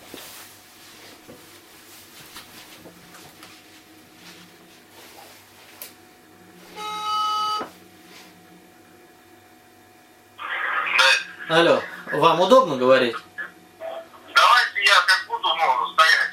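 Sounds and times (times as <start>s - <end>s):
faint hum: 0.0s - 16.3s
electronic ringing tone of a redialed phone call: 6.7s - 7.8s
speech: 11.5s - 13.3s.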